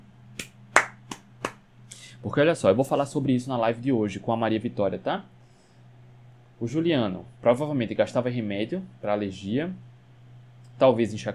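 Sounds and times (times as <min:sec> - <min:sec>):
faint low hum: 0:00.0 - 0:11.3
single person clapping hands: 0:00.4 - 0:01.6
speech: 0:02.2 - 0:05.4, 0:06.6 - 0:09.9, 0:10.8 - 0:11.3.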